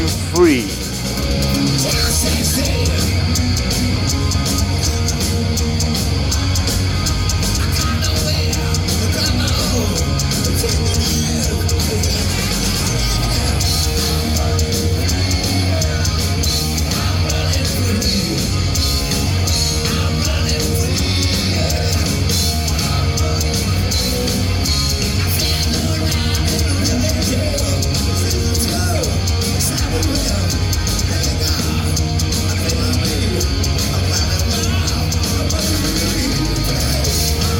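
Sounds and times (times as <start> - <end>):
man in a wheelchair singing in front of the stage: 0.0 - 0.8, 7.6 - 18.7, 19.5 - 24.2, 25.0 - 37.5
loud distorted live rock concert recorded on a mobile phone: 0.0 - 37.5
speech: 0.3 - 0.8.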